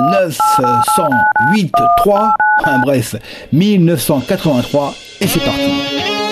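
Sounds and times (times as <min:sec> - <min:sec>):
two-tone keypad beeps entering a date: 0:00.0 - 0:02.9
speech: 0:00.2 - 0:06.2.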